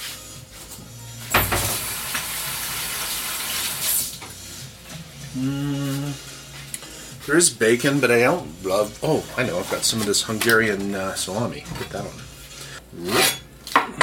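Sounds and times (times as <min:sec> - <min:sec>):
water running from a tap as hands are washed: 0:01.3 - 0:04.3
speech: 0:05.4 - 0:06.3, 0:07.2 - 0:12.3, 0:12.9 - 0:13.3.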